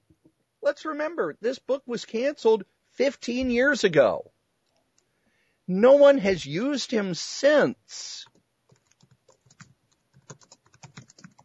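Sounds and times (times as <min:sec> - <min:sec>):
speech: 0:00.7 - 0:04.3, 0:05.7 - 0:08.3
fast typing on computer keyboard: 0:08.2 - 0:11.4.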